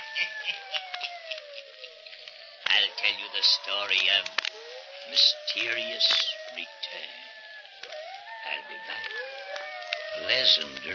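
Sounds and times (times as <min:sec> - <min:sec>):
laughter: 0:00.0 - 0:04.1
hissing background: 0:00.0 - 0:10.9
hounds howling: 0:00.0 - 0:10.9
speech: 0:00.2 - 0:01.1, 0:02.7 - 0:04.5, 0:05.1 - 0:09.2, 0:10.2 - 0:10.9.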